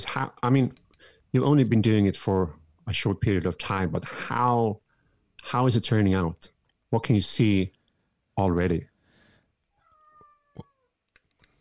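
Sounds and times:
speech: 0.0 - 4.8, 5.4 - 7.8, 8.4 - 8.9
cat meowing: 9.8 - 11.0.

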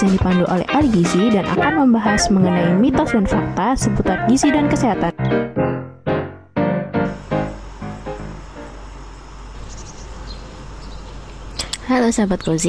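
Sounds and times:
speech: 0.0 - 5.6, 11.9 - 12.6
birds chirping softly in a garden: 1.6 - 5.5, 7.2 - 12.6.

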